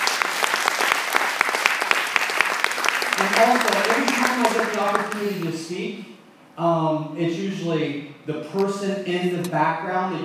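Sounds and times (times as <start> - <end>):
crowd applauding: 0.0 - 5.5
speech: 3.2 - 10.2.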